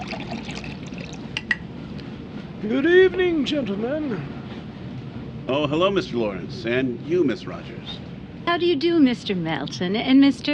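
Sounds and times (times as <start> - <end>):
water poured into a glass at a restaurant table: 0.0 - 1.4
speech: 2.6 - 4.4, 5.5 - 10.5.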